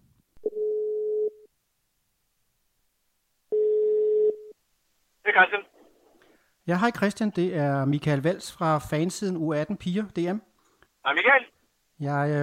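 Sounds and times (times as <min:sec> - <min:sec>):
outgoing phone call ringback tone: 0:03.5 - 0:04.5
person's voice answering the phone: 0:05.3 - 0:05.6, 0:11.1 - 0:11.5
speech: 0:05.4 - 0:05.7, 0:06.7 - 0:12.4.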